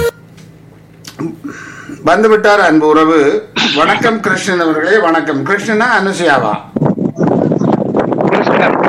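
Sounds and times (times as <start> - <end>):
speech: 1.2 - 6.7
wind gusting outdoors across a phone microphone: 6.2 - 8.8.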